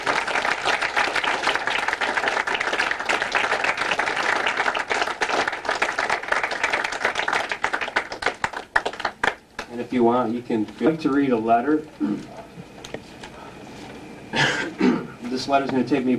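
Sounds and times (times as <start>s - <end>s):
crowd applauding in a room: 0.0s - 9.8s
speech: 9.9s - 12.4s, 15.4s - 16.1s.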